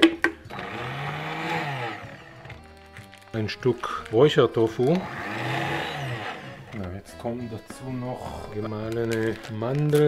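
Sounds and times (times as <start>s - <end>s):
blender motor whirring while pureeing carrot, onion and algae: 0.4s - 7.0s
speech: 3.4s - 5.4s, 6.8s - 10.0s.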